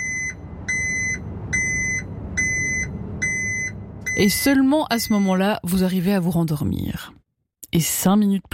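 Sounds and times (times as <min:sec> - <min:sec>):
street noise: 0:00.0 - 0:04.6
garbage truck low rumbling engine: 0:00.0 - 0:05.1
garbage truck reversing alarm beeping: 0:00.0 - 0:05.4
speech: 0:04.2 - 0:08.5.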